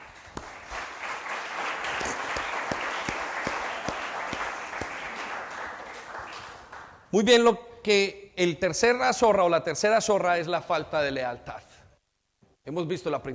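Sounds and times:
crowd of people applauding: 0.0s - 7.1s
speech: 7.1s - 11.6s, 12.7s - 13.3s.

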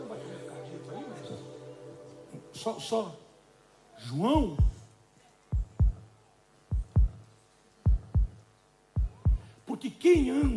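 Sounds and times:
faint low hum: 0.0s - 10.5s
speech: 2.6s - 3.2s, 4.0s - 4.7s, 10.1s - 10.5s
slow steady heartbeat: 4.4s - 4.9s, 5.5s - 6.1s, 6.7s - 7.2s, 7.9s - 8.4s, 9.0s - 9.5s, 10.2s - 10.5s.

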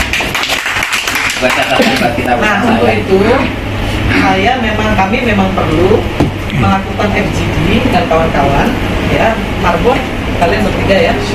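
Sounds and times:
audience clapping: 0.0s - 2.4s
speech: 1.4s - 11.3s.

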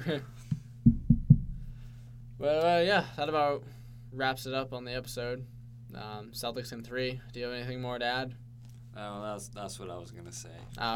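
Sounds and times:
speech: 0.0s - 1.0s, 2.4s - 8.4s, 9.0s - 10.9s
knuckles knocking on wood: 0.8s - 1.6s.

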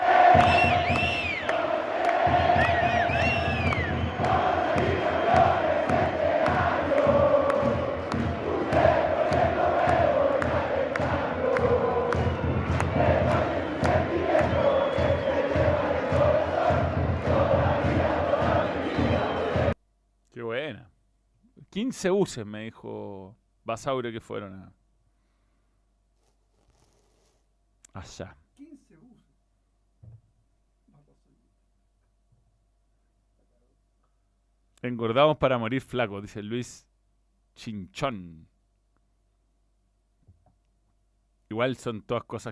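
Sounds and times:
football supporters clapping rhythmically in a stadium: 0.0s - 19.8s
large crowd of football supporters chanting and singing in a stadium: 0.0s - 19.8s
speech: 0.4s - 1.1s, 22.0s - 24.8s, 28.0s - 28.4s, 34.8s - 36.9s, 37.6s - 38.5s, 41.5s - 42.5s.

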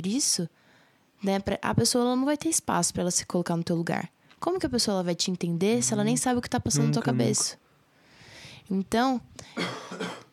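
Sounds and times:
speech: 0.0s - 0.6s, 1.2s - 7.6s, 8.6s - 10.2s
person coughing: 9.5s - 10.3s.

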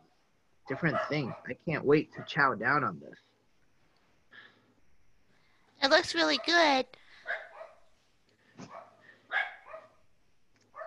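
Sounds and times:
dogs barking: 0.7s - 1.6s, 7.2s - 7.8s, 8.6s - 10.0s
speech: 0.7s - 3.3s, 5.8s - 7.4s.

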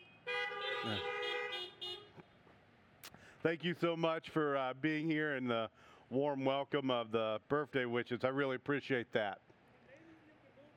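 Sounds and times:
car horns honking: 0.0s - 2.2s
speech: 0.8s - 1.1s, 3.4s - 9.4s.

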